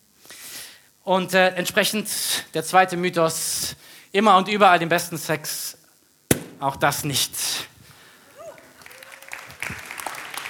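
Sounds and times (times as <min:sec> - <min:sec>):
speech: 0:01.0 - 0:05.6, 0:06.6 - 0:07.4
scattered audience applause: 0:08.3 - 0:10.4.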